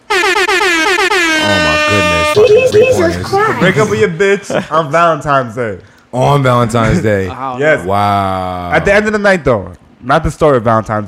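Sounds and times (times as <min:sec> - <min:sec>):
air horn sound effect blasts: 0:00.0 - 0:02.5
laughter: 0:01.5 - 0:04.8
speech: 0:02.8 - 0:11.0.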